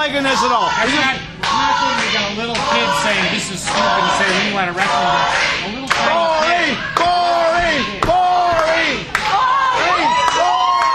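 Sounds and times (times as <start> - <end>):
speech: 0.1 - 6.2
wrestling arena crowd jeering and chanting: 0.8 - 10.8
sharp slaps and claps: 7.0 - 9.4.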